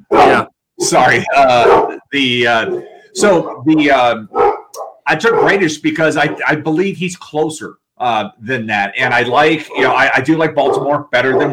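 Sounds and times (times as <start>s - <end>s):
dogs barking in loud yelping bursts: 0.0s - 0.5s, 1.4s - 2.0s, 2.6s - 6.6s, 9.7s - 11.5s
speech: 0.3s - 4.4s, 5.1s - 11.5s.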